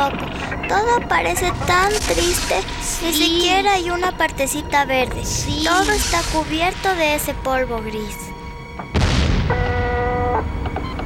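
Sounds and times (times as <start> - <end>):
speech: 0.0 - 8.9
steady whining tone: 0.0 - 11.0
sustained low rumble: 0.1 - 11.0
loud explosion blast: 8.9 - 10.0.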